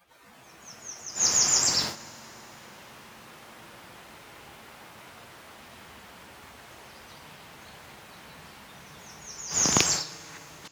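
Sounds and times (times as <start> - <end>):
bird song: 0.0 - 2.7, 6.7 - 10.7.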